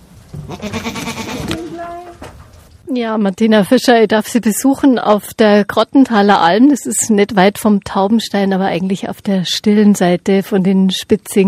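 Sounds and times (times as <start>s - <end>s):
speech: 0.5s - 1.0s, 2.9s - 11.4s
two large white goats bleating at a mountain alpine pasture: 0.5s - 2.2s.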